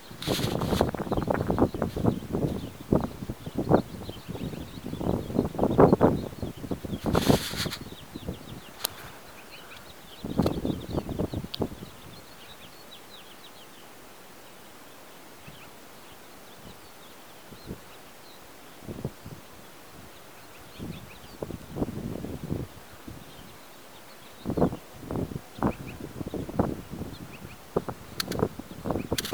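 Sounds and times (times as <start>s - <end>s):
leaves rustling in wind outdoors: 0.0s - 11.8s
gusty spring wind buffeting the microphone: 0.0s - 12.6s, 18.9s - 23.6s, 24.4s - 29.3s
small birds chirping faintly: 0.0s - 29.3s.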